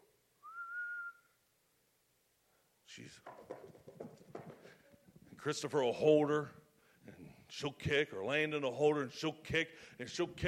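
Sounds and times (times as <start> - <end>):
person whistling one sustained clear tone: 0.4 - 1.4
speech: 2.9 - 10.4.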